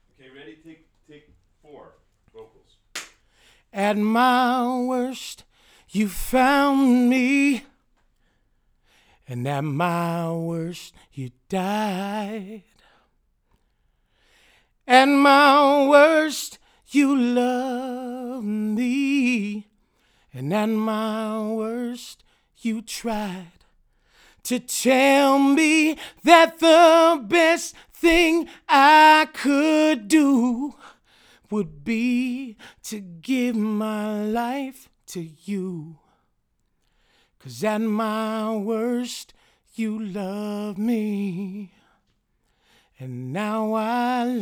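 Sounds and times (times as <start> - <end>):
male vocal: 3.7 - 7.8, 9.2 - 12.8, 14.8 - 19.7, 20.3 - 23.7, 24.4 - 36.2, 37.4 - 41.8, 43.0 - 44.4.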